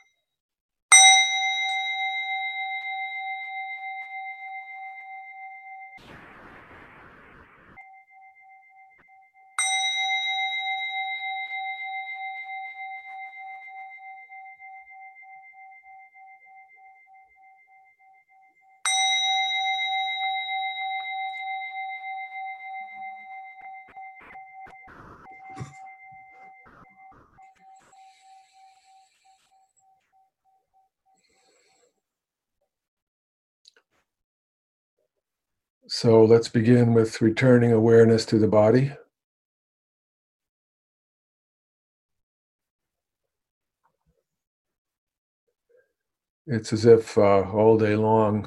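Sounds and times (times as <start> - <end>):
small meditation bell struck: 0.9 - 6.0, 7.8 - 31.8
speech: 35.9 - 39.0, 46.5 - 48.4.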